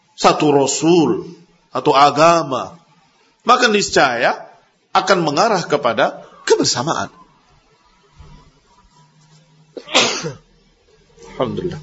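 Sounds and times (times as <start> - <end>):
speech: 0.2 - 2.8, 3.4 - 7.2, 9.8 - 10.4, 11.4 - 11.8
faint murmuring voices: 6.0 - 11.8
person sneezing: 9.8 - 10.4.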